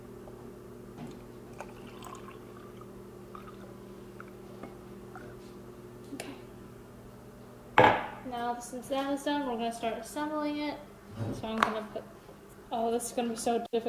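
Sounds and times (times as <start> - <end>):
steady low hum: 0.0 - 13.8
scattered drips: 1.1 - 4.4
water trickling and splashing into a container: 1.5 - 4.4
speech: 8.3 - 13.8.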